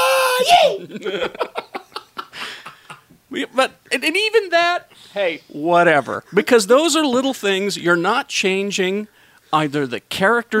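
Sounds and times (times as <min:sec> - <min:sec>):
loud, shrill crazed scream: 0:00.0 - 0:00.8
speech: 0:00.4 - 0:01.6, 0:03.4 - 0:10.5
laughter: 0:00.8 - 0:03.0.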